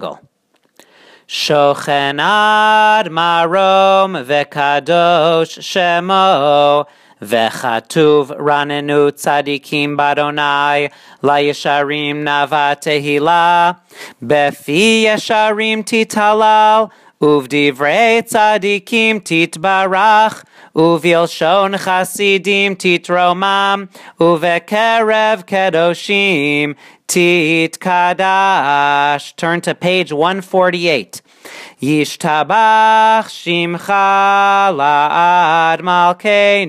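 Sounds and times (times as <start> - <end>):
liturgical chant: 1.3 - 31.0, 31.8 - 36.6.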